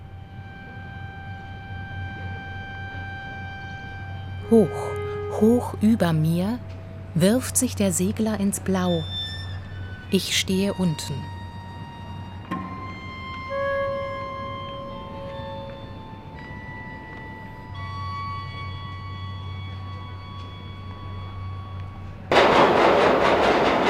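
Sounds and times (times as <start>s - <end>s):
subway train rumbling: 0.0s - 23.8s
speech: 4.5s - 9.2s, 10.1s - 11.3s
subway train wheels and brakes squealing: 8.6s - 21.7s.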